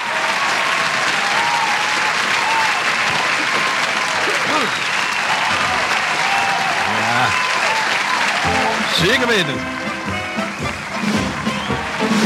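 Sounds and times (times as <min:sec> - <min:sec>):
cheers: 0:00.0 - 0:12.2
large crowd applauding: 0:00.0 - 0:12.2
faint whistles: 0:04.6 - 0:05.3
speech: 0:09.0 - 0:09.8.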